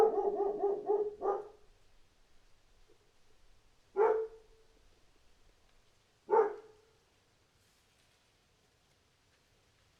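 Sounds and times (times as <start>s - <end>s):
dog barking: 0.0s - 1.7s, 4.0s - 4.5s, 6.3s - 6.9s.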